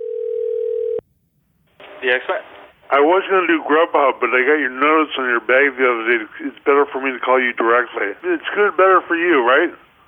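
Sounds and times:
short burst of phone line noise: 0.0s - 1.0s
telephone dial tone of a recorded customer phone call: 0.0s - 1.0s
speech: 2.0s - 9.9s.

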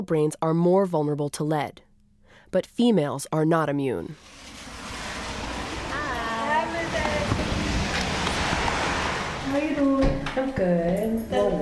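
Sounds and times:
speech: 0.0s - 1.9s, 2.5s - 4.5s, 9.5s - 11.5s
heavy rain pouring down outside in northern Cincinnati: 4.2s - 10.2s.

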